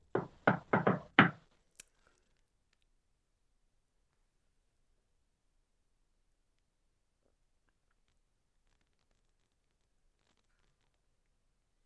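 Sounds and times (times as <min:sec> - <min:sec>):
dull solid knocks: 0:00.2 - 0:01.4.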